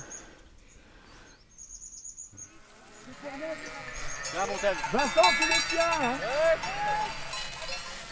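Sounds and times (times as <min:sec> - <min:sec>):
bells of a flock of sheep clanking and jangling: 0:02.4 - 0:08.1
man calling out: 0:03.0 - 0:07.4
speech: 0:03.2 - 0:07.2.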